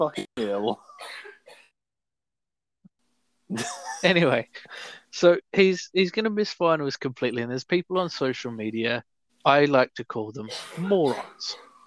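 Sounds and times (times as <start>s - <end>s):
speech: 0.0s - 1.2s, 3.5s - 11.7s
person coughing: 0.1s - 1.6s, 10.5s - 11.6s.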